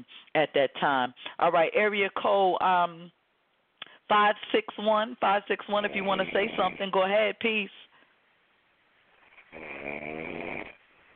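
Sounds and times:
speech: 0.0s - 3.2s, 4.1s - 7.9s, 9.5s - 10.4s
caller snoring over a phone line: 9.2s - 10.8s.

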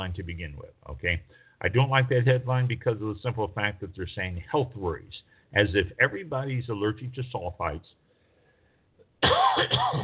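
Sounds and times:
speech: 0.1s - 8.0s, 9.2s - 10.0s
person coughing: 9.2s - 10.0s.

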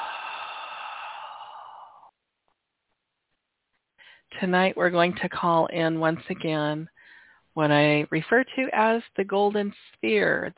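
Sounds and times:
long steady exhale of breath: 0.0s - 2.1s
tiny faint breath noise: 0.0s - 2.1s, 4.0s - 4.3s, 7.0s - 7.5s
speech: 4.4s - 7.0s, 7.6s - 10.5s.

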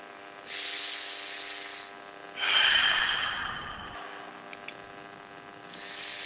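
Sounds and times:
slow deep relaxation breath: 0.5s - 4.7s, 5.7s - 6.2s.

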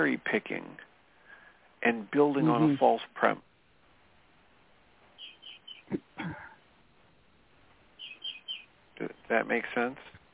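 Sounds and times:
speech: 0.0s - 0.9s, 1.8s - 3.5s, 5.9s - 6.4s, 9.0s - 10.1s
bird chirping in Florida: 5.0s - 6.6s, 7.8s - 9.4s.

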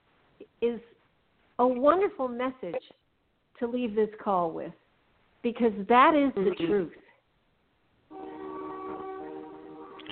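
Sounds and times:
speech: 0.6s - 1.0s, 1.6s - 3.0s, 3.6s - 4.8s, 5.4s - 7.0s
train horn multi-tone blast: 8.1s - 10.0s.

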